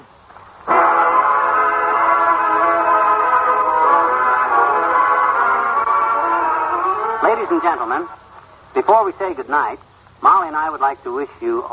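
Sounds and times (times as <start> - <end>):
loud multi-toned train whistle blast: 0.7 - 7.4
speech: 7.5 - 11.7.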